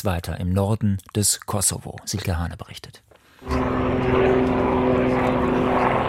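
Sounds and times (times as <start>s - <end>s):
speech: 0.0s - 5.4s
military helicopter droning overhead: 3.4s - 6.0s.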